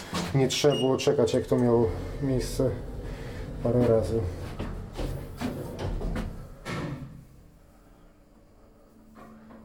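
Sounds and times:
speech: 0:00.3 - 0:02.9, 0:03.6 - 0:04.4
elevator low steady mechanical hum: 0:01.1 - 0:09.6
elevator sliding doors rattling: 0:01.4 - 0:07.2.

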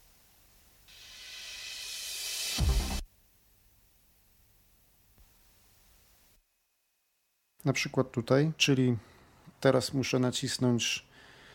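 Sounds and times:
steady broadband hiss in a digitized recording: 0:00.0 - 0:06.4
speech: 0:07.6 - 0:11.1.

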